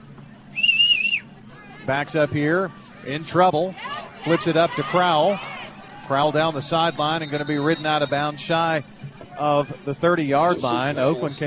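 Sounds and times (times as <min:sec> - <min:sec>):
low steady crowd rumble: 0:00.0 - 0:11.4
speech: 0:01.9 - 0:05.5, 0:06.1 - 0:11.4
shrill referee's whistle blast: 0:06.7 - 0:08.4.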